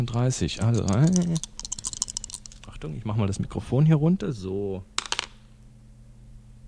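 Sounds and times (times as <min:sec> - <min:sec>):
speech: 0:00.0 - 0:01.6, 0:02.8 - 0:04.9
dice including a 100-sided die clattering across a hard table: 0:00.6 - 0:02.6, 0:05.0 - 0:05.4.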